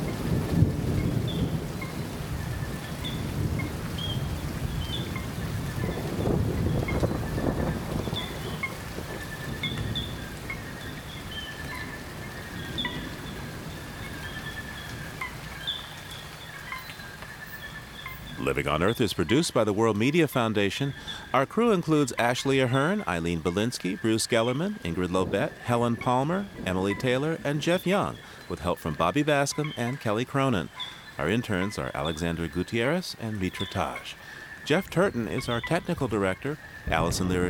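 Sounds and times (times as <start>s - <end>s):
deep rolling thunder in a rainforest: 0.0s - 16.2s, 36.6s - 37.4s
birds chirping in a rainforest: 0.0s - 37.4s
insects calling in a rainforest: 0.0s - 37.4s
steady rain in a rainforest: 0.0s - 37.4s
speech: 18.5s - 37.4s.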